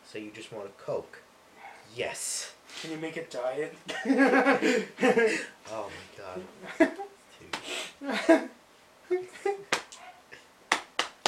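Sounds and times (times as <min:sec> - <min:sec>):
speech: 0:00.1 - 0:01.3, 0:01.9 - 0:07.0, 0:08.0 - 0:09.6
laughter: 0:03.9 - 0:05.6, 0:08.0 - 0:08.5
hand slapping on jeans-covered knee: 0:07.5 - 0:07.7, 0:09.7 - 0:10.0, 0:10.7 - 0:11.2.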